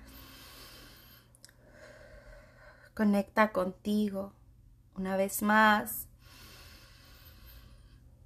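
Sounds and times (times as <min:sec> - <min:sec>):
slow deep breath drawn in and let out: 0:00.0 - 0:03.0, 0:06.1 - 0:08.2
speech: 0:03.0 - 0:04.4, 0:05.0 - 0:06.0.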